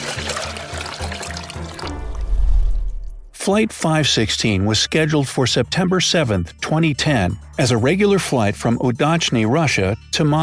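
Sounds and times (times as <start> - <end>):
water pouring into a glass: 0.0 - 2.8
deeper louder rumble: 1.9 - 3.4
speech: 3.4 - 10.4.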